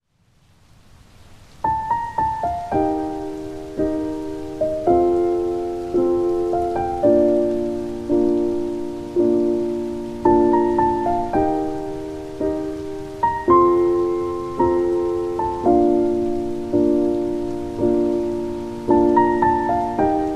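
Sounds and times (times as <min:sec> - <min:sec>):
rain: 0:00.0 - 0:20.3
healing music: 0:01.6 - 0:20.3.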